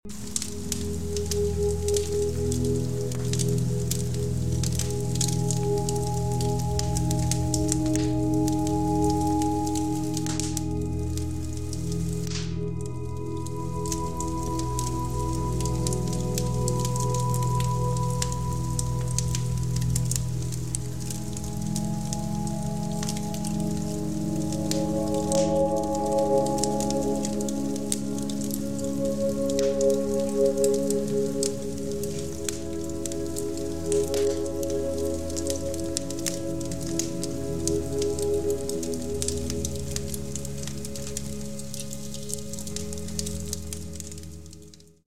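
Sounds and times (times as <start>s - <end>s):
Celtic 432 Hz healing meditation music: 0.0s - 45.0s
fireplace: 0.0s - 45.0s.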